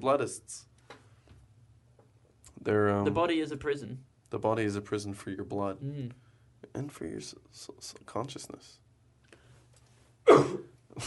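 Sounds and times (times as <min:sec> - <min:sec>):
speech: 0:00.0 - 0:00.7, 0:02.6 - 0:08.8, 0:10.3 - 0:11.0
person coughing harshly: 0:10.2 - 0:11.0.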